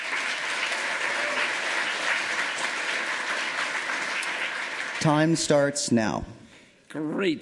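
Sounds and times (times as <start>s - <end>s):
audience applause with many hands clapping: 0.0s - 5.7s
speech: 5.0s - 7.3s.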